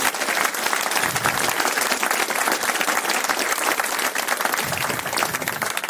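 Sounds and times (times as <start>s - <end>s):
large audience applauding loudly: 0.0s - 5.8s.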